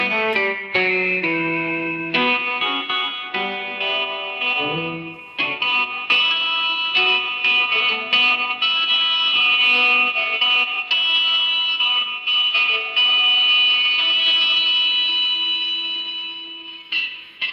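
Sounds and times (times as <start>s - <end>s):
country music ringtone: 0.5s - 16.8s.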